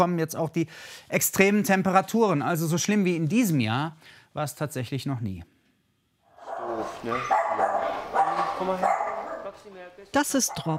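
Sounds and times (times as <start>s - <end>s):
speech: 0.0s - 5.5s, 6.8s - 7.7s, 8.6s - 9.0s, 9.6s - 10.7s
old mixed-breed dog barking: 6.4s - 9.6s, 10.5s - 10.7s.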